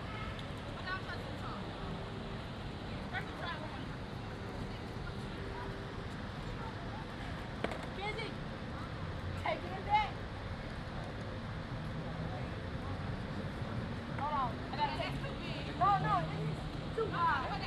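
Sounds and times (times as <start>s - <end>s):
low rumble of passing traffic: 0.0s - 17.6s
people talking in an outdoor park: 0.0s - 17.6s
skateboard clacks and board impacts from skaters practicing tricks: 7.6s - 8.0s.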